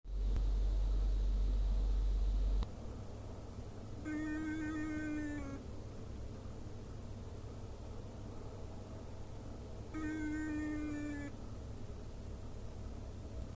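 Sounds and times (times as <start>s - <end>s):
intermittent sound in telescope declination drive: 0.1s - 13.5s.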